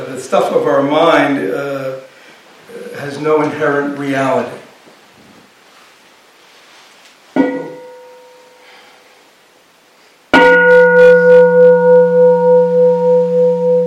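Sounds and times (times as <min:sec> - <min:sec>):
speech: 0:00.3 - 0:02.0, 0:03.2 - 0:04.6
bell being struck: 0:07.4 - 0:08.7, 0:10.3 - 0:13.8.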